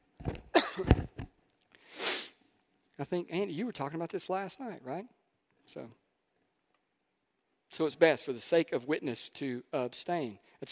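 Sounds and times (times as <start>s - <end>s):
person coughing: 0.5s - 1.0s
speech: 3.0s - 6.0s, 7.7s - 10.7s.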